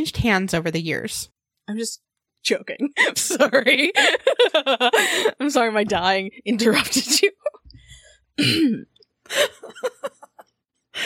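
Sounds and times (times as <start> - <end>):
speech: 0.0 - 7.6, 8.4 - 10.2
laughter: 3.0 - 5.4, 9.3 - 10.6
person coughing: 8.4 - 9.0.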